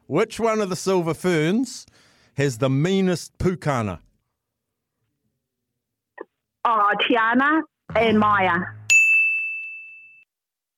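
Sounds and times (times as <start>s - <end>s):
speech: 0.1s - 4.1s, 6.6s - 8.8s
single bright bell ding: 8.9s - 10.3s.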